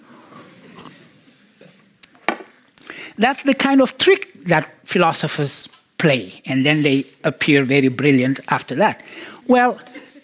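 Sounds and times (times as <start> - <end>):
speech: 3.2 - 10.0
person sipping water from a glass: 6.6 - 7.2.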